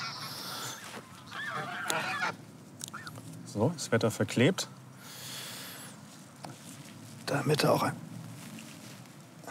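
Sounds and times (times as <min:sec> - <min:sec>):
geese honking: 0:00.0 - 0:03.2
speech: 0:03.6 - 0:04.8, 0:07.3 - 0:08.0.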